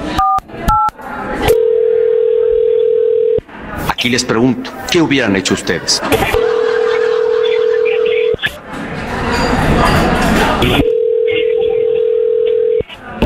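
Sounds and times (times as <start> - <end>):
noisy crowd-like sound: 0.0 - 13.2
telephone dialing tone: 1.5 - 3.4, 6.4 - 8.4, 10.7 - 12.9
speech: 4.0 - 6.4
laughter: 5.5 - 10.9.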